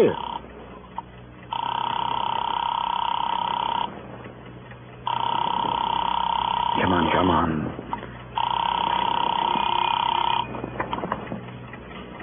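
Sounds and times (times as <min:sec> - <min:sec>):
speech: 0:00.0 - 0:00.3
telephone ringing through the line with a steady electronic tone: 0:00.0 - 0:00.5, 0:01.5 - 0:04.0, 0:05.0 - 0:11.3.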